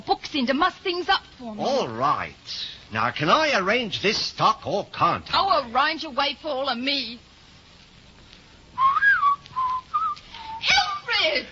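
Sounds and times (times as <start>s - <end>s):
speech: 0.3s - 7.3s
man whistling a tune: 8.8s - 10.7s.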